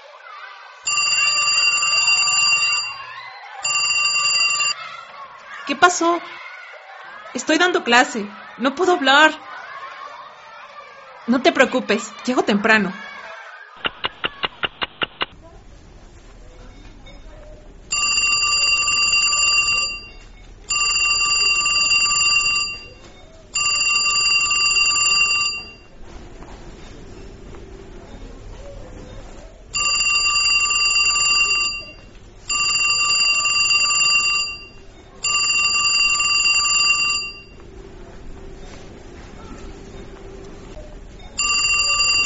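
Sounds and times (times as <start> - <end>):
telephone bell ringing: 0.8 - 4.8, 17.9 - 26.0, 29.7 - 37.6, 41.2 - 42.2
speech: 5.7 - 6.4, 7.3 - 9.5, 11.3 - 13.0
laughter: 8.1 - 11.1, 11.9 - 15.3.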